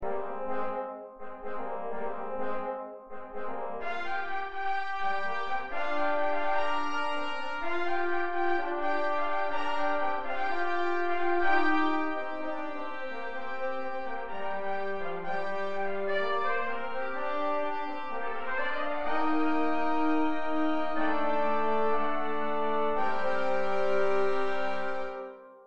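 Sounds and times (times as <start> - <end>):
trombones: 0.0 - 25.6
trumpets: 0.0 - 25.6.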